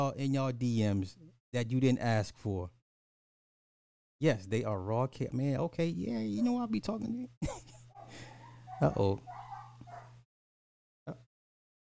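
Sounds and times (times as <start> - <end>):
speech: 0.0 - 2.8, 4.2 - 9.4
neighbor's dog whimpering in a drawn-out whiny tone: 6.0 - 6.7, 7.9 - 10.1
laughter: 7.4 - 8.4
neighbor's dog short sharp bark: 7.9 - 10.2.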